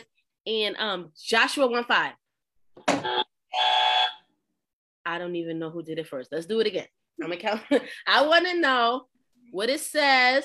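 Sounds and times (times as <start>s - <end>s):
speech: 0.4s - 2.2s, 2.8s - 3.9s, 5.0s - 10.4s
quiz game buzzer blasts: 3.0s - 4.2s.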